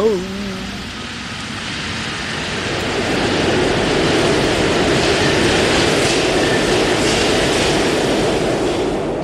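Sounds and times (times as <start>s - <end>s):
metro train rolling into a station in Paris: 0.0s - 9.2s.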